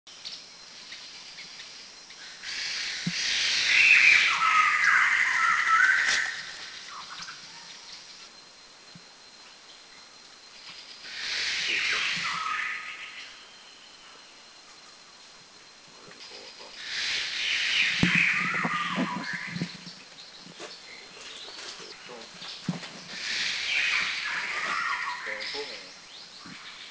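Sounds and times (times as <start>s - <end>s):
White-crested Laughingthrush calling in Kaeng Krachan National Park Thailand: 2.1s - 8.1s, 10.9s - 14.5s, 15.9s - 26.8s.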